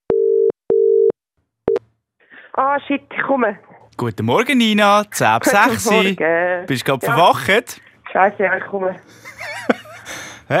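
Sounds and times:
ringing tone of an outgoing telephone call: 0.1s - 1.1s
speech: 2.6s - 9.8s.

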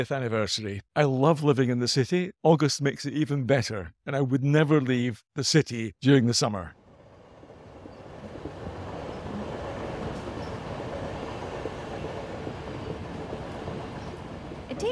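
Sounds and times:
speech: 0.0s - 6.8s
passenger train rolling along the rails from London to Edinburgh: 6.8s - 14.9s.

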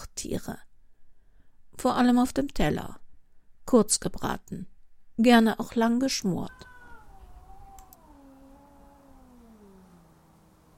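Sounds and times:
speech: 0.2s - 0.7s, 1.8s - 3.0s, 3.7s - 6.7s
small black tomcat with white paws meowing: 6.4s - 10.5s.

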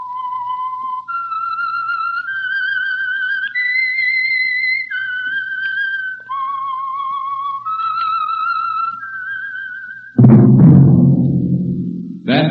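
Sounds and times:
lone whistled melody: 0.0s - 10.2s
loud full burst of sound: 10.2s - 12.4s.

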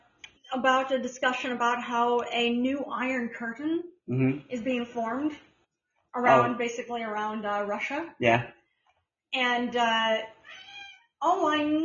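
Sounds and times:
speech: 0.5s - 5.5s, 6.1s - 8.6s, 9.3s - 10.6s, 11.2s - 11.8s
cat meowing: 10.5s - 11.0s.

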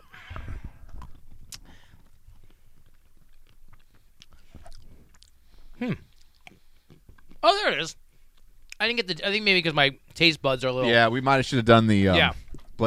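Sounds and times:
wet mouth sounds: 0.3s - 7.4s
person chewing everything bagel seasoned cashews: 0.7s - 7.4s
speech: 5.8s - 6.1s, 7.4s - 8.0s, 8.8s - 12.8s.

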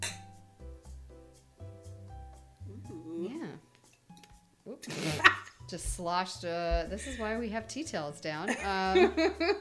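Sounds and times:
wine glasses clinking in a toast: 0.0s - 0.4s, 3.9s - 4.5s
speech: 5.7s - 9.5s.

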